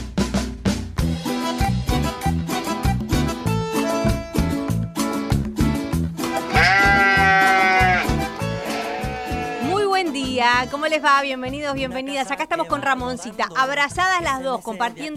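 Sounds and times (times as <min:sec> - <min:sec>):
upbeat rhythmic music with steady percussion: 0:00.0 - 0:15.1
sheep bleating: 0:06.4 - 0:09.8
speech: 0:10.6 - 0:15.1.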